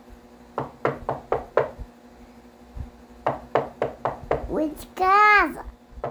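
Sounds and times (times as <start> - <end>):
sharp knocks on a door during a birthday party: 0.6 - 1.9, 3.2 - 4.5
speech: 4.6 - 5.7.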